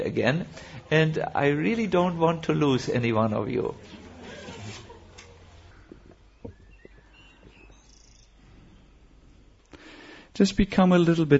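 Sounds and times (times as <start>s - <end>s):
speech: 0.0s - 4.0s, 10.4s - 11.3s
birds chirping: 3.9s - 9.3s.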